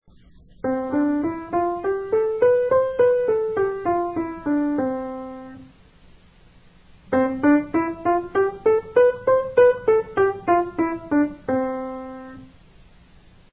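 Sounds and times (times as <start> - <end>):
C4 scale: 0.6 - 5.6, 7.1 - 12.5.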